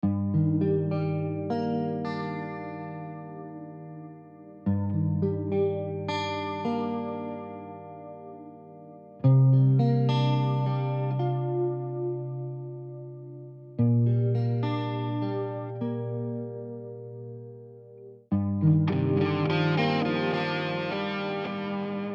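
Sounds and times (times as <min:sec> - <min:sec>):
sad guitar improvisation in G minor: 0:00.0 - 0:22.1.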